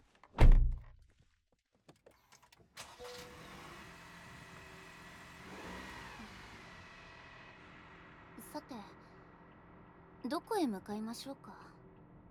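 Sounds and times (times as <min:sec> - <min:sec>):
car door closing: 0:00.4 - 0:00.9
car engine starting and idling: 0:02.6 - 0:12.3
speech: 0:08.6 - 0:09.0, 0:10.3 - 0:11.6.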